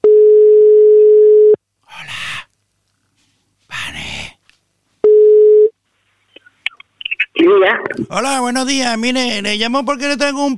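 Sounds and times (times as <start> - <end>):
telephone ringback tone while a call connects: 0.0 - 1.6, 5.1 - 5.7
speech: 7.4 - 10.5.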